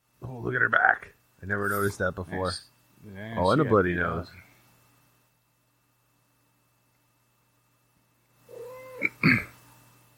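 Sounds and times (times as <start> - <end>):
faint steady hum: 0.0 - 10.1
speech: 0.4 - 4.5
house cat meowing: 8.5 - 9.1.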